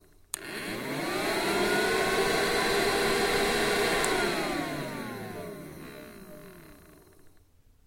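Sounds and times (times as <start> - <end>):
handheld vacuum cleaner: 0.3 - 7.4.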